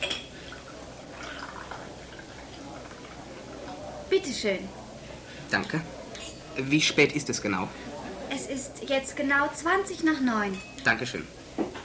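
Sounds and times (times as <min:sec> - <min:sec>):
coffee pouring into a cup: 0:00.0 - 0:04.1
speech: 0:04.1 - 0:04.8, 0:05.5 - 0:06.0, 0:06.6 - 0:11.4.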